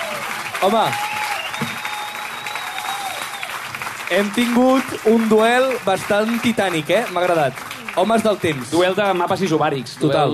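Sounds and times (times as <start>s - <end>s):
audience applause: 0.0s - 10.3s
speech: 0.6s - 1.1s, 4.1s - 10.3s
faint whistle-like tone: 1.2s - 2.8s.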